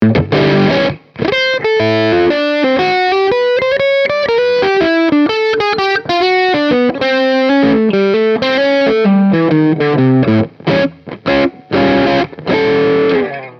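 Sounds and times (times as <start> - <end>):
Yamaha Pacifica 112V bridge coil-split distortion: 0.0 - 13.5.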